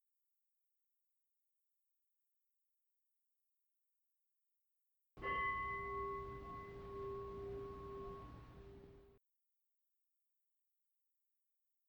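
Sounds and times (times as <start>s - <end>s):
meditation bell struck to end a meditation session: 5.2s - 9.2s.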